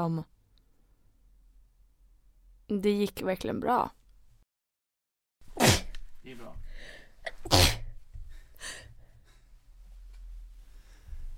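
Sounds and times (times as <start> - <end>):
speech: 0.0 - 0.3, 2.7 - 4.0, 7.2 - 7.8
person sneezing: 5.5 - 6.0, 7.3 - 7.9.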